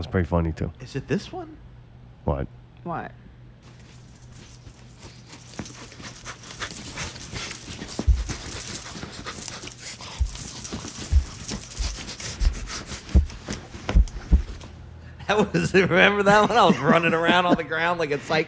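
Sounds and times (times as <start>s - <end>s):
speech: 0.0s - 1.6s, 2.3s - 3.2s, 15.3s - 18.4s
scuffling and rustling: 3.6s - 14.8s
dog panting: 4.4s - 13.4s
dull thumps: 10.2s - 14.7s
laughter: 15.2s - 18.4s.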